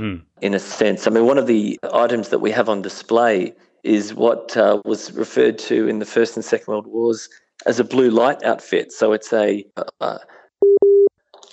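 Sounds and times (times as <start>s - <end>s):
speech: 0.0s - 10.9s
phone line busy tone from a dropped tie line: 10.6s - 11.1s.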